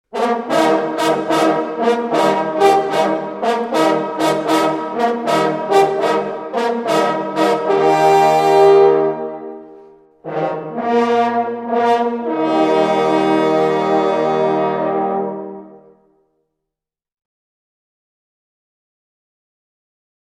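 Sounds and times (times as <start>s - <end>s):
hunting horn players playing a hunting call: 0.1s - 16.0s.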